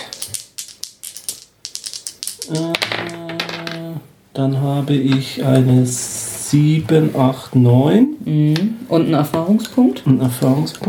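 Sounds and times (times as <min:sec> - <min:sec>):
dice rattling and tumbling across a surface: 0:00.0 - 0:03.8
speech: 0:02.5 - 0:03.1, 0:04.4 - 0:10.8.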